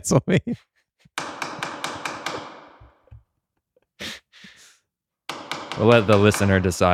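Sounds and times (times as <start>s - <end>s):
speech: 0.0s - 1.2s, 5.8s - 6.9s
sharp wooden knocks of a gavel banging: 1.2s - 3.2s, 5.3s - 6.9s.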